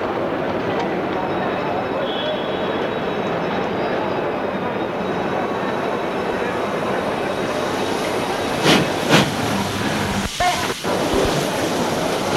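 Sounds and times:
faint voices: 0.0 - 12.3
old train rolling into a station: 0.0 - 12.3
old train squealing and clanking as it slows at a platform: 0.4 - 9.4.

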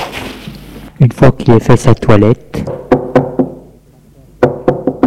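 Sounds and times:
speech: 1.2 - 2.8
knocking on a door: 2.7 - 3.6, 4.4 - 5.0.

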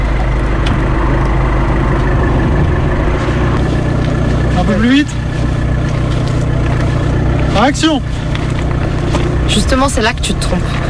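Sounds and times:
car engine idling: 0.0 - 10.8
speech: 4.7 - 5.2, 7.6 - 8.1, 9.5 - 10.8.

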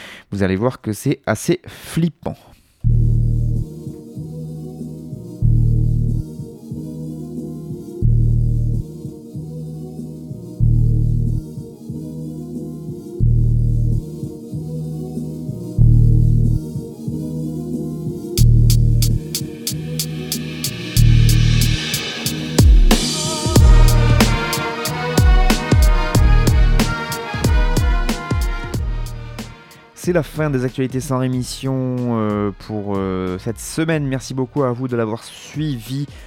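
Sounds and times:
speech: 0.3 - 3.1, 30.1 - 36.2
mellow tonal layers: 2.8 - 29.6
steady looping deep bass pulse: 2.9 - 3.7, 5.4 - 6.3, 8.0 - 8.8, 10.6 - 11.4, 13.2 - 14.0, 15.7 - 16.7, 18.4 - 28.0, 28.6 - 29.6
crisp percussion: 18.4 - 29.6
ticking hi-hats: 18.4 - 29.7.

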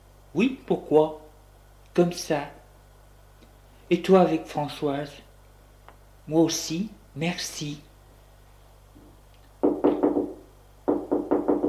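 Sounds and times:
speech: 0.4 - 1.2, 2.0 - 2.6, 3.9 - 5.2, 6.3 - 7.9
knocking on a door: 9.6 - 11.6.

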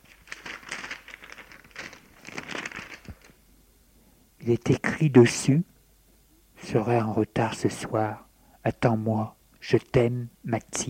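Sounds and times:
small paper note crinkling as it is unfolded: 0.0 - 3.4
speech: 4.4 - 5.7, 6.7 - 10.8.

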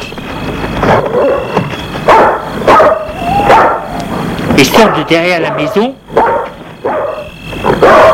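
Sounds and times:
large wolf-dogs barking aggressively: 0.9 - 8.1
speech: 4.6 - 6.0.

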